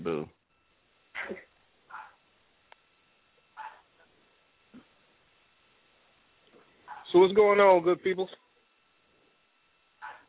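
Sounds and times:
hiss: 0:00.0 - 0:10.2
small dog yipping: 0:01.9 - 0:02.2, 0:10.0 - 0:10.2
speech: 0:07.2 - 0:08.4.

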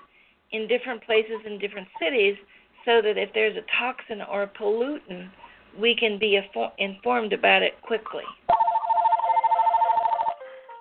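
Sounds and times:
speech: 0:00.5 - 0:08.4
telephone ringing with a bright warbling electronic trill: 0:08.5 - 0:10.4.

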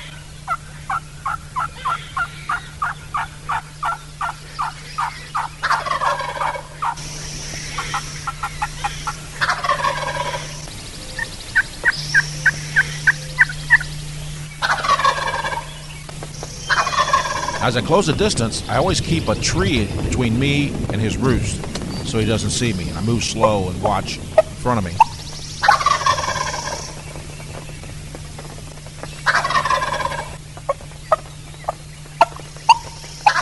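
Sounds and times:
hunter imitating hen turkey yelps with turkey calls: 0:00.0 - 0:14.0, 0:14.6 - 0:17.7, 0:24.4 - 0:27.7, 0:29.1 - 0:33.4
tom turkey gobbling: 0:00.0 - 0:20.0, 0:22.0 - 0:33.4
steady low hum: 0:00.0 - 0:33.4
speech: 0:17.7 - 0:25.1.

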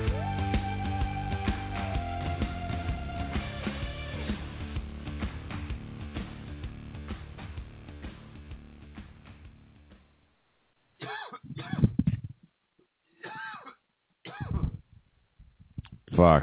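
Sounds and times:
music: 0:00.0 - 0:10.2
man coughing in short harsh bursts: 0:11.0 - 0:12.0, 0:13.2 - 0:14.7
speech: 0:16.2 - 0:16.4.

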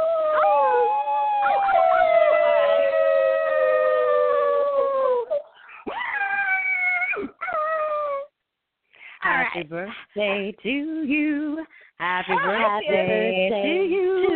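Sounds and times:
people howling like dogs: 0:00.0 - 0:08.3
speech: 0:09.6 - 0:14.2.

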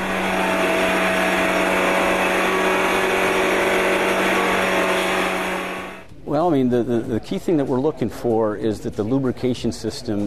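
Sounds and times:
racing engine running on a tilting dynamometer test stand: 0:00.0 - 0:06.0
speech: 0:06.5 - 0:10.2.

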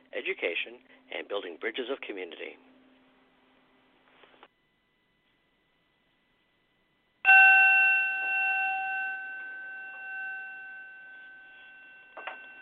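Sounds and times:
speech: 0:00.2 - 0:02.7
ritual bell struck and ringing: 0:07.3 - 0:12.6.

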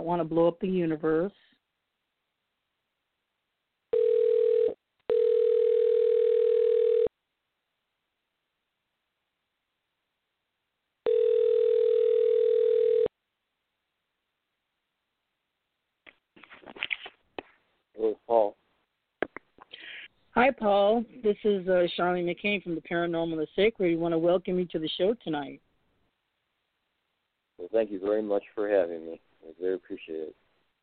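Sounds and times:
speech: 0:00.0 - 0:01.5, 0:20.5 - 0:25.7, 0:27.7 - 0:30.4
telephone line tone while dialing in to a call: 0:03.9 - 0:07.1, 0:11.0 - 0:13.1.

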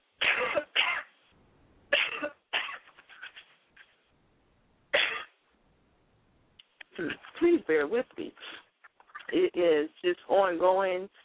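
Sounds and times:
person with a cold coughing: 0:00.2 - 0:01.1, 0:01.9 - 0:03.5, 0:05.0 - 0:05.4
speech: 0:07.0 - 0:08.6, 0:09.3 - 0:11.2.

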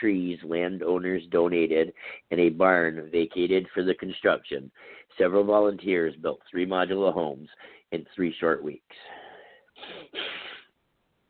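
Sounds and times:
speech: 0:00.0 - 0:09.2
congested breathing from a cold through a blocked nose: 0:01.9 - 0:02.3, 0:04.7 - 0:05.2, 0:07.5 - 0:08.0, 0:09.0 - 0:10.7.

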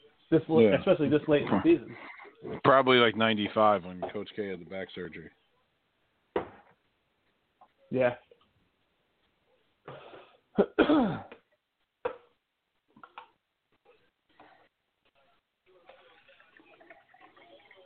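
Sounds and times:
speech: 0:00.3 - 0:05.4, 0:07.9 - 0:08.2, 0:10.6 - 0:11.4
person clearing throat: 0:01.4 - 0:02.7, 0:10.6 - 0:11.4
person coughing: 0:10.6 - 0:11.4.

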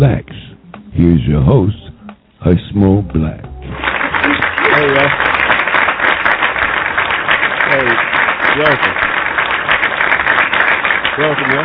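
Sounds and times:
speech: 0:00.0 - 0:00.3, 0:01.0 - 0:01.8, 0:02.4 - 0:03.5, 0:04.8 - 0:05.3, 0:08.6 - 0:09.1, 0:11.2 - 0:11.6
live crowd applauding: 0:03.6 - 0:11.6.

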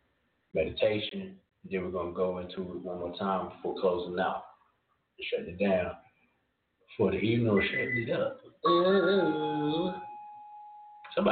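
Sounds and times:
speech: 0:00.5 - 0:04.5, 0:05.2 - 0:06.0, 0:06.9 - 0:10.1, 0:11.2 - 0:11.3
electronic chime from a front door alarm system in a house: 0:07.6 - 0:08.2, 0:09.2 - 0:11.1.

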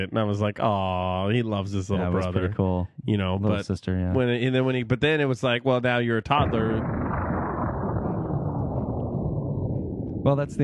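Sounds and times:
speech: 0:00.0 - 0:07.0, 0:10.3 - 0:10.6
explosion sound effect with deep loud rumbling roar: 0:06.4 - 0:10.6.

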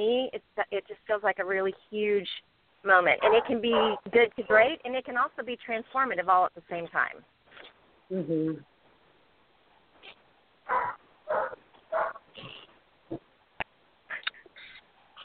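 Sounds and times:
speech: 0:00.0 - 0:08.7, 0:10.7 - 0:12.5
dog barking: 0:03.2 - 0:04.1, 0:10.7 - 0:12.2.

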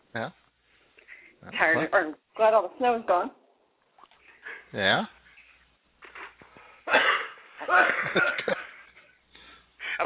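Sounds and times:
speech: 0:00.1 - 0:00.4, 0:01.4 - 0:03.4, 0:04.7 - 0:05.2, 0:06.9 - 0:08.6
person coughing harshly: 0:06.9 - 0:08.7.

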